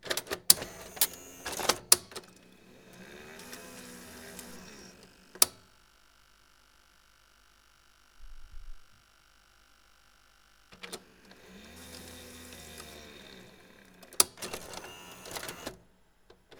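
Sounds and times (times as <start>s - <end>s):
video tape inserted and ejected from a tape deck: 0.1s - 5.7s, 10.7s - 15.8s.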